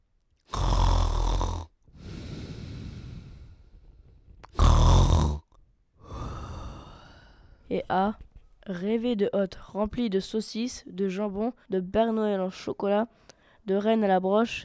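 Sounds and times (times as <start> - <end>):
wolf snoring: 0.5 - 3.7, 4.5 - 5.6
speech: 7.7 - 14.6.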